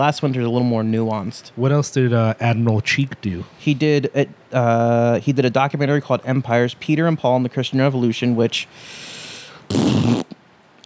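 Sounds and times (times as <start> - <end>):
speech: 0.0 - 10.1
loud sputtering mouth fart blown through the lips: 9.7 - 10.4.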